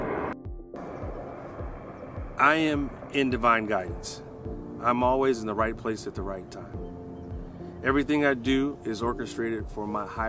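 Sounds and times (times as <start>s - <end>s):
helicopter flying overhead: 0.0s - 7.8s
speech: 2.4s - 6.8s, 7.8s - 10.2s.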